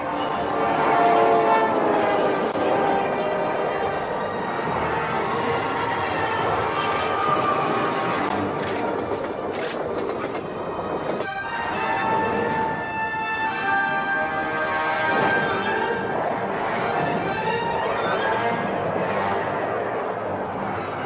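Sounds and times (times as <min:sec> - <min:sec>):
train horn: 0:00.0 - 0:08.4, 0:11.2 - 0:21.0
train rumbling past: 0:00.0 - 0:21.0
clatter of train wheels: 0:07.2 - 0:11.3.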